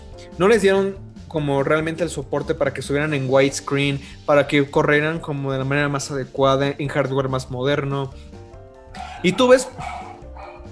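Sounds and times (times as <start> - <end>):
speech: 0.4 - 8.4, 9.2 - 10.0
dogs barking: 8.9 - 10.7.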